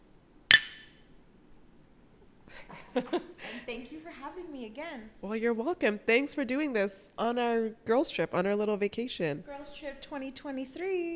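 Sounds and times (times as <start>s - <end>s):
glasses clinking in a toast among women on a girls' trip vacation: 0.5s - 1.0s
speech: 3.0s - 11.1s.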